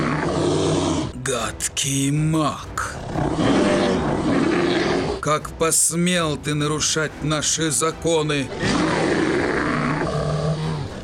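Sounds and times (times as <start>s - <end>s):
brown bear roaring: 0.0s - 1.2s, 2.8s - 5.3s, 8.5s - 11.0s
speech: 1.3s - 4.4s, 5.2s - 9.2s.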